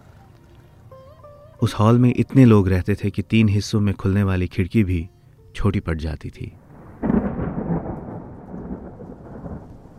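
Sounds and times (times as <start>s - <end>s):
speech: 1.6s - 6.6s
deep roll of thunder rumbling: 6.6s - 9.9s
steady rain: 6.6s - 9.9s.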